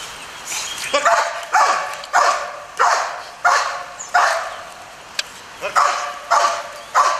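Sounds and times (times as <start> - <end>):
police service dogs barking: 0.9 - 4.8, 5.6 - 7.1.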